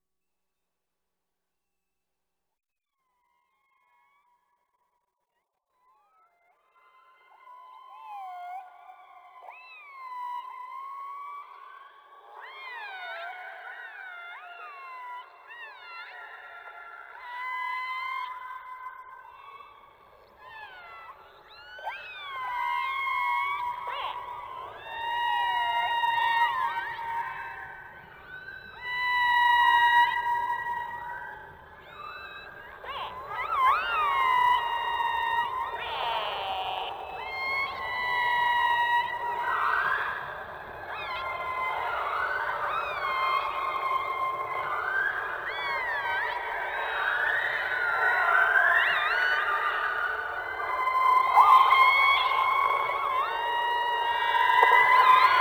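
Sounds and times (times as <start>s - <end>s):
orca biological sounds underwater: 20.1s - 55.4s.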